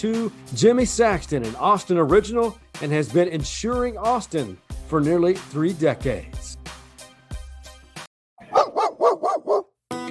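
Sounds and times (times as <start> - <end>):
speech: 0.0 - 6.6
dog barking: 8.4 - 9.7.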